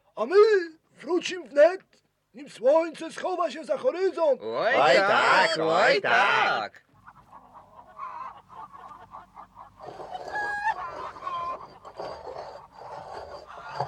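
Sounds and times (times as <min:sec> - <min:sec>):
speech: 0:00.2 - 0:06.9
farmyard birds clucking and squawking with honk-like cries: 0:07.0 - 0:12.0.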